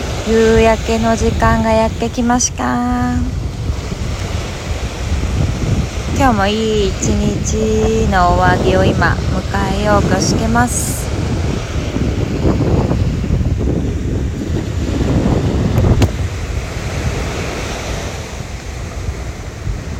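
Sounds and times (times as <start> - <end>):
gusts of wind buffeting the microphone: 0.0 - 19.9
ocean waves washing onto a shore at Miyako Island at sunset: 0.0 - 19.9
speech: 0.2 - 3.4, 6.2 - 11.1.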